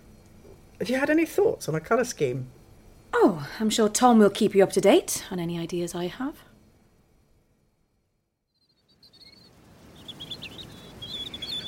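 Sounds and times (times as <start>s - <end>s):
speech: 0.8s - 6.5s
birds singing by a lake: 8.5s - 11.6s.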